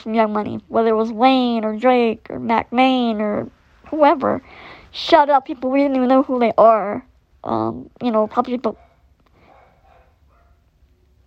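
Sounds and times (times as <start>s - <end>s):
speech: 0.0s - 8.8s
dog barking softly: 8.7s - 11.0s.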